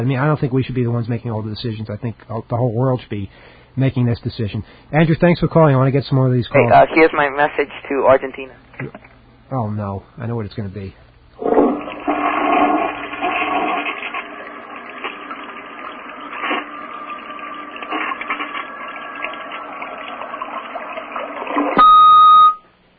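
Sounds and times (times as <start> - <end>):
speech: 0.0 - 11.5
water gurgling: 11.4 - 21.8
toilet flushing: 11.4 - 21.9.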